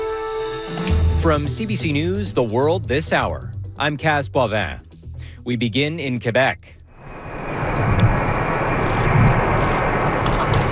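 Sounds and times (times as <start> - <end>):
speech: 1.2 - 6.8
passenger plane landing at an airport in Bagotville: 7.0 - 10.6.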